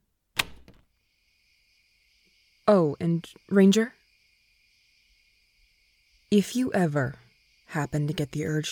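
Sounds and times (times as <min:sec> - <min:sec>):
door latch click: 0:00.4 - 0:00.8
door creaking as it is opened: 0:00.4 - 0:00.9
faint high hum: 0:01.0 - 0:08.7
speech: 0:02.7 - 0:04.0, 0:06.3 - 0:08.7.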